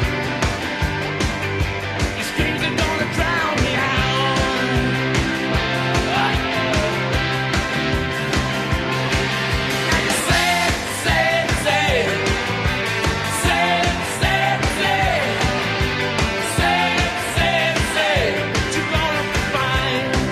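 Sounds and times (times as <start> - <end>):
rock song with full band and guitars: 0.0 - 20.3.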